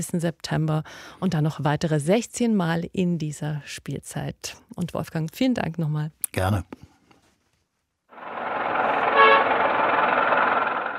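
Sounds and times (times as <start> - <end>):
speech: 0.0 - 6.8
busy street traffic rumbling in Hanoi: 8.1 - 10.9
car horns honking in city traffic: 8.8 - 10.0.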